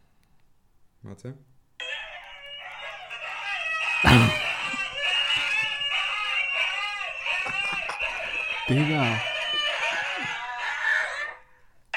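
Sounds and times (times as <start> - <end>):
speech: 1.0 - 1.6, 8.7 - 9.3
pack of husky dogs screaming and howling: 1.8 - 11.9
laughter: 2.2 - 11.9
person exclaiming: 4.0 - 4.7.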